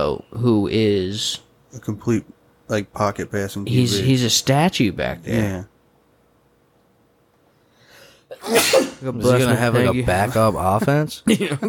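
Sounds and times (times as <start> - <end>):
speech: 0.4 - 5.7, 8.4 - 11.6
soft sneeze: 8.3 - 9.1.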